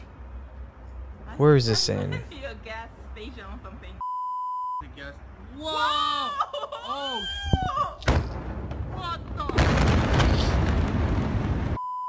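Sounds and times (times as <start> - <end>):
speech: 1.3 - 4.1, 4.8 - 9.9
short electronic beeps: 4.0 - 4.8
roaring rumble of debris: 7.5 - 11.8
explosion in a played video: 8.0 - 11.8.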